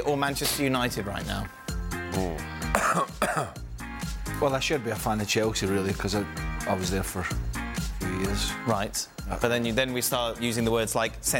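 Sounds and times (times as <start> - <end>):
speech: 0.0 - 3.6, 4.4 - 11.3
person with a drawn-out voiced raspy cough: 2.6 - 3.6.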